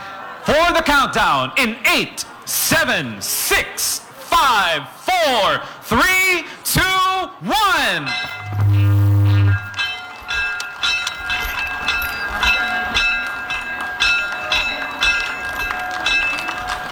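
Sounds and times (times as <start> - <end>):
speech: 0.5 - 9.0
noisy background: 0.5 - 16.8
ceremonial bell ringing: 7.8 - 8.8, 9.4 - 16.9
brief low horn-like blast: 8.3 - 9.8.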